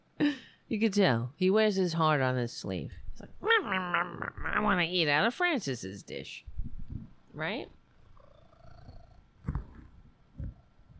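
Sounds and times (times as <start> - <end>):
speech: 0.7 - 3.3, 4.6 - 6.5, 7.4 - 7.8
cat purring: 8.0 - 10.9.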